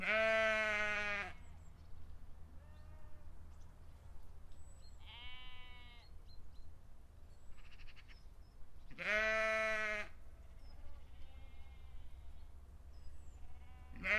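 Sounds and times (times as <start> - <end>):
sheep bleating in a field: 0.0 - 1.4, 5.0 - 6.1, 9.0 - 12.3, 13.4 - 14.1.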